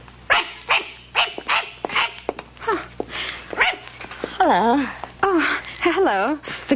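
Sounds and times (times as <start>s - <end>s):
small dog yapping with high-pitched barks in a park: 0.3s - 2.2s, 3.6s - 3.9s
speech: 4.5s - 5.0s, 6.1s - 6.7s.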